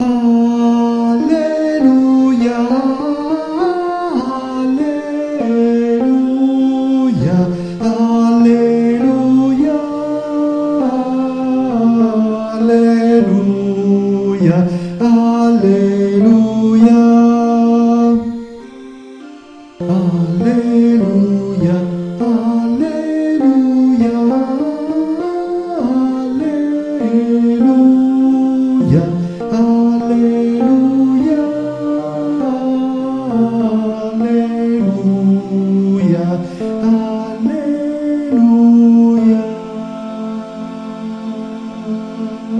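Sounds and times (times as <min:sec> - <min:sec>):
tenors singing alleluia: 0:00.0 - 0:42.5.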